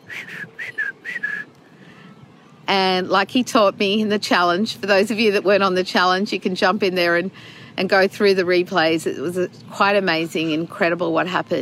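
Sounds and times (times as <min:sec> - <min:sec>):
person whistling a short quick tune: 0:00.0 - 0:01.5
speech: 0:02.7 - 0:11.6.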